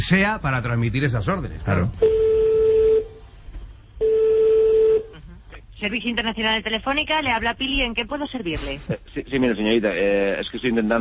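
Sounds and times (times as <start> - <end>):
speech: 0.1 - 2.2, 5.8 - 10.9
telephone line tone while placing an international call: 2.0 - 3.2, 4.0 - 5.1.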